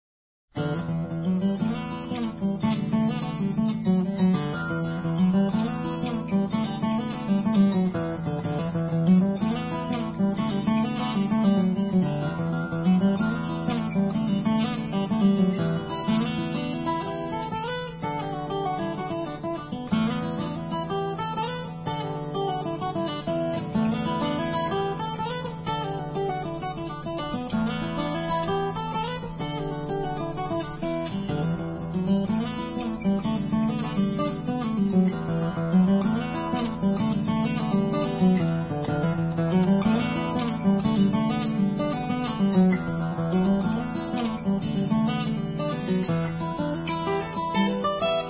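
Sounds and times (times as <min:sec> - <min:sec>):
acoustic guitar playing a Celtic tune: 0:00.6 - 0:48.2.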